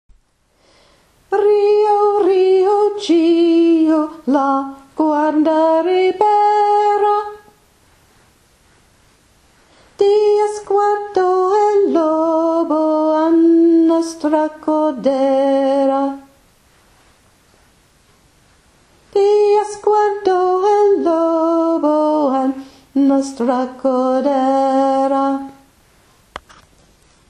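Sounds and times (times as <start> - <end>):
soprano voice singing slowly: 1.3 - 7.6, 10.0 - 16.4, 19.1 - 25.7.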